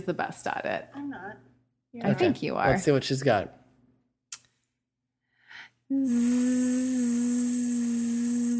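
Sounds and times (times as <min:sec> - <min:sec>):
speech: 0:00.0 - 0:03.6, 0:05.9 - 0:08.5
woman's breathy sounds: 0:05.3 - 0:08.5
woman's voice imitating a water flosser with buzzing hum and hissing: 0:05.9 - 0:08.5.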